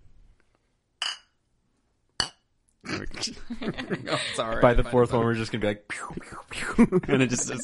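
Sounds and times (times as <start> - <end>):
glasses clinking together in a toast: 1.0 - 1.4, 2.2 - 2.4
speech: 3.0 - 7.6
laughter: 3.1 - 5.5, 6.6 - 7.6.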